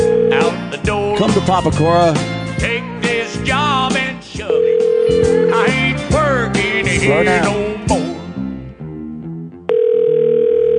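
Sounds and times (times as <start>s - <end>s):
unanswered telephone call ringing tone: 0.0s - 0.6s, 4.5s - 6.0s, 9.7s - 10.7s
speech: 1.2s - 2.8s, 3.4s - 5.8s, 6.4s - 7.9s.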